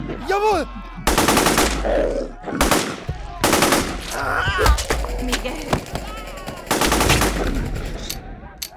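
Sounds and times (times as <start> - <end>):
speech: 0.3 - 0.8, 1.8 - 2.7, 4.2 - 6.1
rapid gunfire from guns being shot: 1.1 - 1.8, 2.6 - 4.1, 5.0 - 8.1.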